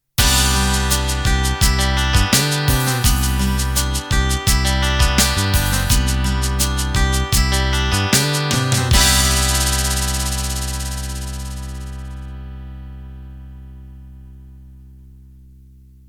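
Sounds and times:
rock ballad ending: 0.2 - 12.6.

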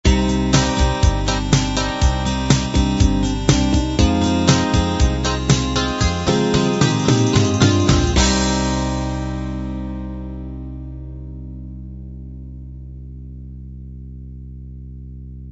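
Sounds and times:
light rock ending: 0.1 - 10.3.

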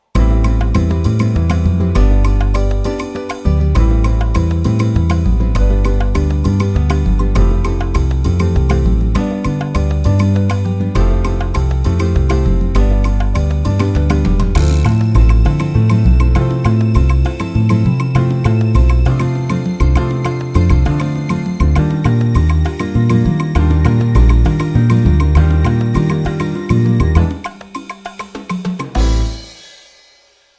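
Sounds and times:
latin music in 3-4 time: 0.0 - 30.5.

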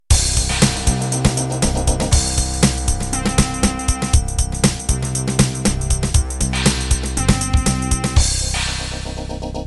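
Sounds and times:
jungle ambience: 0.1 - 9.5.

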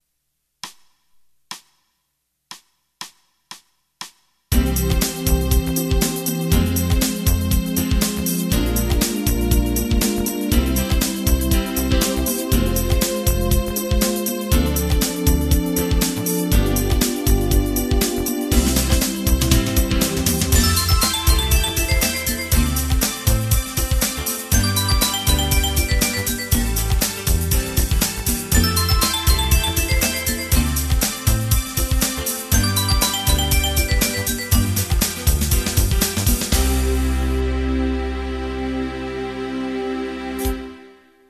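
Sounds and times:
strings: 4.6 - 41.1
synth bass: 10.6 - 13.8, 14.5 - 40.8
warm synth pad: 36.9 - 41.0.

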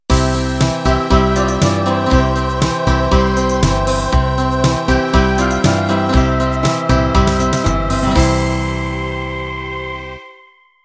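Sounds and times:
schlager music ending: 0.1 - 10.4.

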